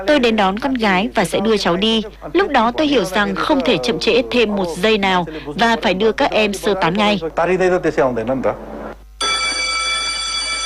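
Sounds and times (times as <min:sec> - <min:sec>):
speech: 0:00.0 - 0:08.7
loud electric school bell ringing: 0:09.2 - 0:10.6.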